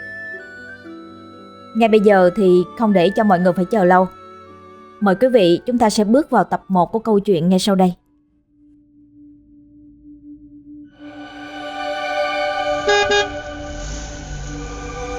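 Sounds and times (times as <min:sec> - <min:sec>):
speech: 0:01.8 - 0:04.2, 0:05.0 - 0:08.0
vehicle horns honking at a busy intercity bus station in Saigon: 0:12.7 - 0:13.5.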